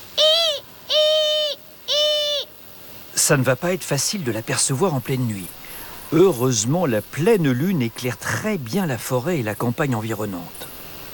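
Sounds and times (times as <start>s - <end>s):
barn owl hooting at night: 0.0s - 2.6s, 4.4s - 9.1s
speech: 3.2s - 10.6s.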